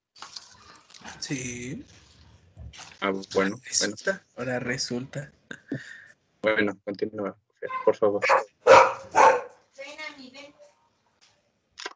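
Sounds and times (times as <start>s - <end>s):
speech: 1.2s - 2.0s, 3.0s - 8.4s
large dog barking: 8.2s - 9.5s.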